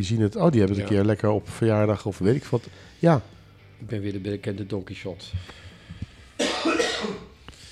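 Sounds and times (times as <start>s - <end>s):
speech: 0.0s - 5.6s
person coughing from a tickle in the throat: 6.4s - 7.7s.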